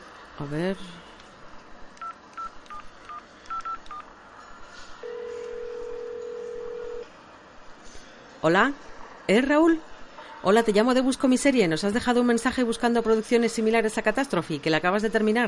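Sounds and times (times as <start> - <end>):
speech: 0.4 - 1.1, 8.4 - 15.4
telephone keypad dialing tones: 2.0 - 4.0, 5.0 - 7.0.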